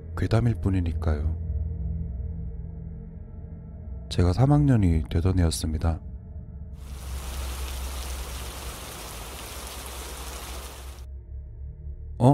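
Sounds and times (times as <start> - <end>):
speech: 0.2 - 1.4, 4.1 - 6.1, 12.2 - 12.3
rain pouring: 6.8 - 11.1.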